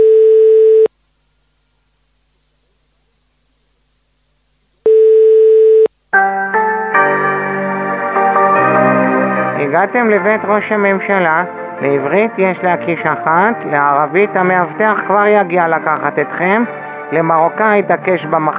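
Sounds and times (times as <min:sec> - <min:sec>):
electronic telephone ringing tones: 0:00.0 - 0:00.9, 0:04.8 - 0:05.9
music: 0:06.1 - 0:18.5
speech: 0:09.8 - 0:18.5.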